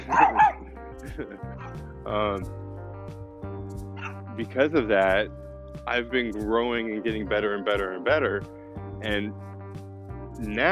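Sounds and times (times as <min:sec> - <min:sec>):
dog barking: 0:00.0 - 0:00.7
speech: 0:00.1 - 0:00.4, 0:01.0 - 0:02.7, 0:04.4 - 0:09.5, 0:10.4 - 0:10.6.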